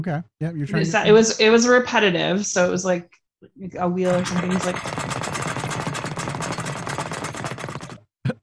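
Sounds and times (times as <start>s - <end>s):
speech: 0.0s - 5.3s
speed bag rattling under rapid punches: 4.1s - 8.0s.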